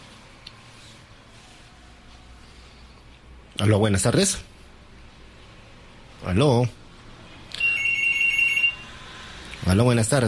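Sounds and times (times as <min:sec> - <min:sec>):
speech: 0:03.6 - 0:04.5, 0:06.3 - 0:06.8, 0:09.7 - 0:10.2
telephone ringing with an incoming call: 0:07.6 - 0:09.0.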